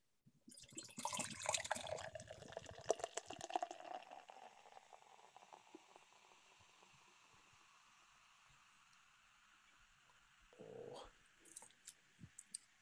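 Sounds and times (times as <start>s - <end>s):
triple beer pouring into a glass: 0.5s - 9.4s.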